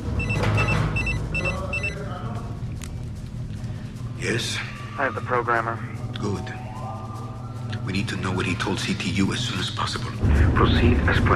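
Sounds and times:
electronic telephone ringing: 0.1 - 2.0
speech: 4.2 - 6.6, 7.9 - 11.3.

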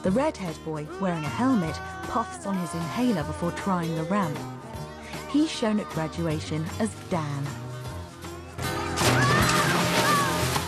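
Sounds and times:
speech: 0.0 - 4.6, 5.3 - 7.6
body splashing into water: 8.7 - 10.6.

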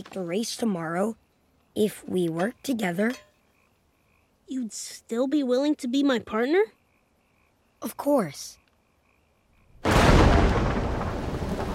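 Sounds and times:
speech: 0.0 - 1.2, 1.8 - 3.3, 4.5 - 6.8, 7.8 - 8.6
heavy rain storm: 9.8 - 11.7.

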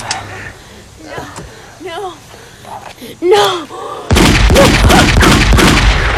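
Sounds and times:
speech: 3.1 - 3.8
rapid gunfire on a railway bridge: 4.1 - 6.1.

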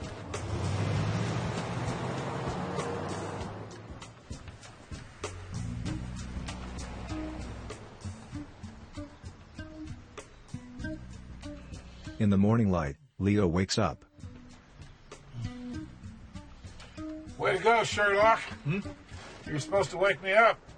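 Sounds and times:
loaded van driving away: 0.0 - 11.6
speech: 12.2 - 14.1, 17.5 - 20.6.

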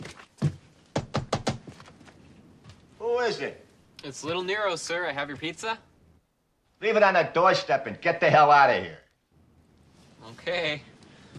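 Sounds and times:
knocking on the back door of a house: 0.4 - 1.7
speech: 3.2 - 5.9, 6.8 - 9.0, 10.2 - 10.9.

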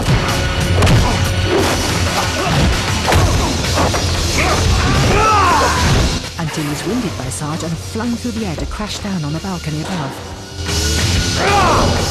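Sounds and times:
punches and kicks in a superhuman fight: 0.0 - 6.2
speech: 7.0 - 12.1.

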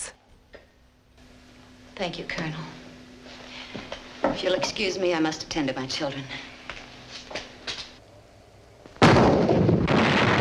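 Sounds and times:
speech: 2.0 - 2.8, 3.8 - 6.5
cannon barrage from siege guns firing at a fort: 9.0 - 10.4.

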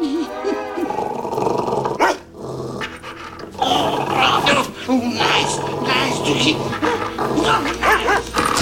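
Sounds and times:
dog growling and snarling while biting a man: 0.8 - 8.6
speech: 6.3 - 8.2
dog yipping: 7.4 - 8.4.

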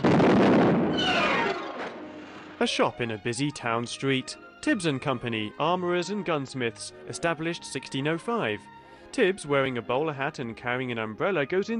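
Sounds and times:
drivable machine exploding: 0.0 - 2.6
speech: 2.6 - 11.7.

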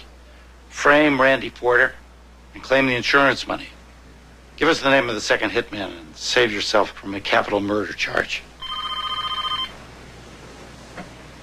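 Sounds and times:
speech: 0.8 - 2.0, 2.6 - 3.8, 4.6 - 8.5
telephone bell ringing in a short rapid trilling burst: 8.6 - 9.8.

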